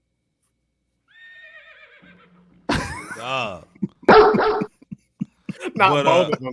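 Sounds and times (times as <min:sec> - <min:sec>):
laughter: 0:02.7 - 0:06.5
speech: 0:03.2 - 0:03.8, 0:05.8 - 0:06.5
dog barking sound effect: 0:04.1 - 0:04.7.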